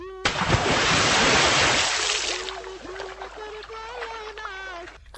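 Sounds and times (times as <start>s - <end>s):
water poured over a sleeping girl: 0.3s - 5.0s.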